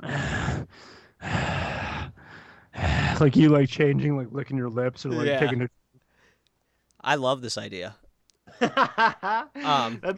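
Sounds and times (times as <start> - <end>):
person breathing heavily in an imitated rhythm: 0.0 - 3.3
speech: 3.2 - 5.8, 7.0 - 8.0, 8.6 - 10.1
laughter: 8.5 - 10.1.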